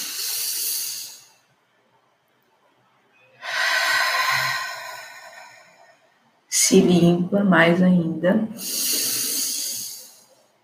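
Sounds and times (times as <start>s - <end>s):
deep breathing during a guided meditation: 0.0s - 1.4s, 3.4s - 6.3s, 8.6s - 10.4s
speech: 6.7s - 8.8s.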